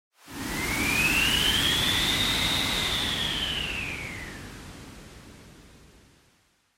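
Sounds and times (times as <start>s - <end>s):
synthetic wind: 0.2s - 6.3s.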